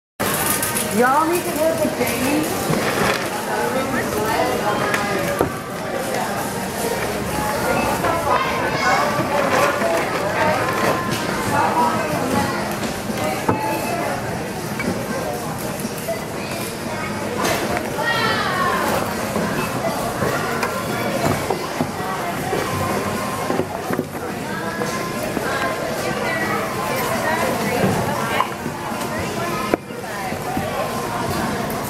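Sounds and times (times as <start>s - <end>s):
grocery store noise: 0.2s - 31.8s.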